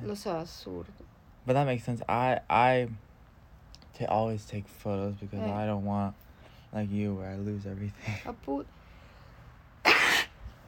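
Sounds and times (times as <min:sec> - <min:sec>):
speech: 0:00.0 - 0:03.0, 0:03.9 - 0:08.8
person sneezing: 0:09.8 - 0:10.4.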